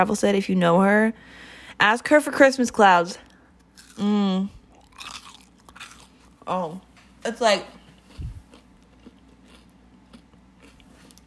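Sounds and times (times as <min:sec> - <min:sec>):
speech: 0:00.0 - 0:03.3, 0:04.0 - 0:05.1, 0:06.5 - 0:07.8
crunching and chewing on homemade Christmas cookies of Rice Krispies, marshmallow and peanuts: 0:03.6 - 0:04.1, 0:04.7 - 0:06.4, 0:07.9 - 0:11.2
short voiced hum: 0:04.0 - 0:04.6.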